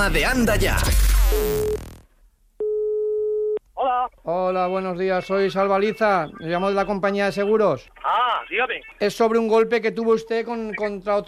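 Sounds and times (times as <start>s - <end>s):
speech: 0.0s - 1.9s, 4.0s - 11.2s
telephone tone as a prank call is placed: 1.4s - 1.9s, 2.6s - 3.6s.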